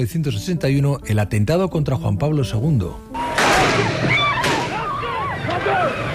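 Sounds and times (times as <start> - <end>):
speech: 0.0 - 3.2
gunshot crack in a crowded square: 3.3 - 4.8
large crowd murmuring and shouting outdoors: 3.9 - 6.1.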